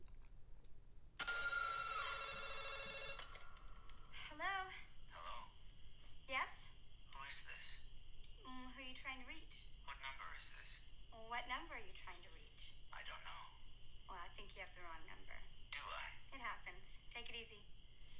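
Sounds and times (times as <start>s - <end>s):
faint hum: 0.0s - 18.1s
telephone bell ringing: 1.2s - 3.5s.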